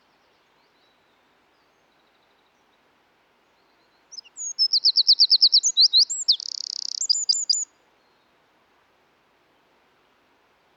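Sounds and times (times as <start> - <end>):
Troglodytes troglodytes Eurasian wren singing a shrill hurried phrase: 4.1 - 7.7.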